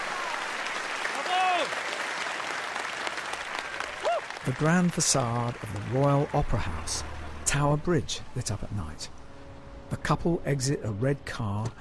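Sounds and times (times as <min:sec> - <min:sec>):
opera audience applauding: 0:00.0 - 0:07.0
speech: 0:04.4 - 0:09.2, 0:10.0 - 0:11.8.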